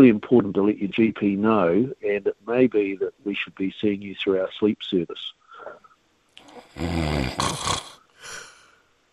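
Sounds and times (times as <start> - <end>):
speech: 0.0 - 5.4, 6.8 - 8.4
voice imitating snoring: 6.4 - 8.5.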